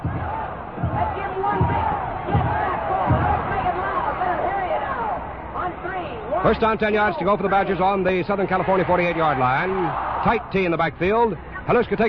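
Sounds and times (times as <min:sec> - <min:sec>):
cheering section chanting at a football game: 0:00.0 - 0:05.3
speech: 0:06.4 - 0:12.0.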